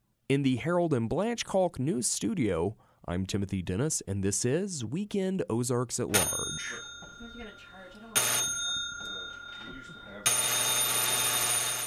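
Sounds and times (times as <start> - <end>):
speech: 0.3 - 7.0
cobbler shop door buzzer: 8.2 - 11.8.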